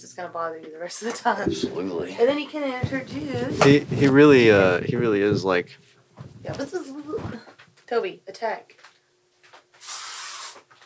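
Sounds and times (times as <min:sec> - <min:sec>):
speech: 0:00.1 - 0:08.9
aerosol bug spray sprayed at a fly: 0:09.8 - 0:10.7.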